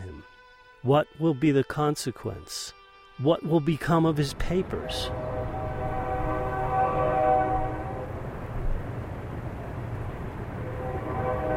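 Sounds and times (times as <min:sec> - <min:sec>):
speech: 0:00.8 - 0:05.3
train rumbling past near the Maltese Cross Cabin in the Badlands: 0:04.4 - 0:11.5
train horn sounding in sustained tones: 0:04.6 - 0:08.3, 0:10.6 - 0:11.5.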